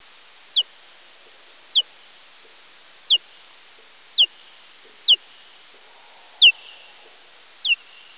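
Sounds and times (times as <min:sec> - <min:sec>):
Eptesicus serotinus calls: 0:00.5 - 0:00.7, 0:03.1 - 0:03.3, 0:04.2 - 0:04.4, 0:05.0 - 0:05.3, 0:06.2 - 0:08.1.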